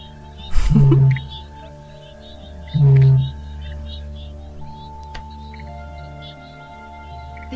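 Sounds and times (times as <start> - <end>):
faint higher bird chirps: 0.0 - 7.5
male Australasian bittern booming call during breeding season: 0.4 - 1.6, 2.2 - 4.0.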